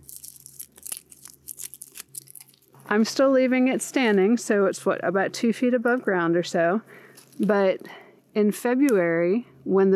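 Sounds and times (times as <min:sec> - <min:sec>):
dried black-eyed Susan stem being cut back, crackling and snapping: 0:00.0 - 0:02.7
faint steady hum: 0:00.0 - 0:09.9
speech: 0:02.9 - 0:09.9.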